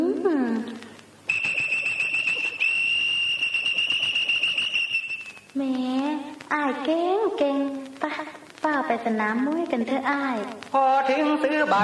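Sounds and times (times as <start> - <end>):
faint noise: 0.0 - 11.8
traffic police officer's whistle long shrill blast: 1.3 - 5.5
speech: 8.9 - 11.8.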